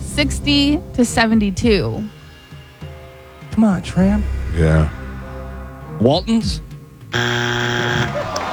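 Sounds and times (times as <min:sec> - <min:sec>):
speech: 0:00.2 - 0:02.2, 0:03.6 - 0:05.0, 0:06.0 - 0:08.4
game time-up buzzer during a trivia quiz: 0:07.1 - 0:08.4.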